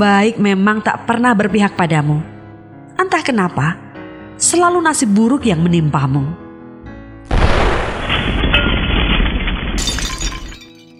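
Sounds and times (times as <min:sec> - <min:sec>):
speech: 0:00.0 - 0:02.3, 0:03.0 - 0:03.8, 0:04.4 - 0:06.4
car explosion: 0:07.3 - 0:10.6
glass shattering: 0:07.3 - 0:10.9
roaring, crackling debris: 0:07.3 - 0:10.9.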